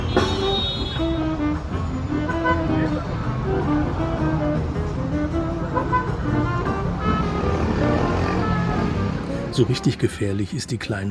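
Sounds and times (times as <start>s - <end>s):
car horns in traffic jam: 0.0s - 9.8s
car engines idling and revving in afternoon traffic jam in São Paulo Brazil: 1.6s - 9.5s
speech: 9.6s - 11.1s.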